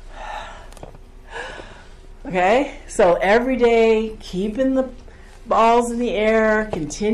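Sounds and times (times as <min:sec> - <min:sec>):
slow deliberate breath in and out: 0:00.0 - 0:02.2
speech: 0:02.3 - 0:07.1.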